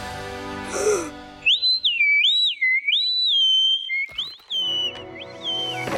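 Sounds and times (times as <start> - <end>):
loud shrill whistle blown to call animals: 1.4 - 5.9.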